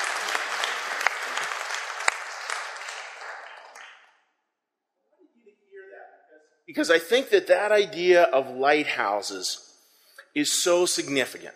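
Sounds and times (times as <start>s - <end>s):
crowd applauding: 0.0s - 4.2s
speech: 6.7s - 9.7s, 10.4s - 11.5s.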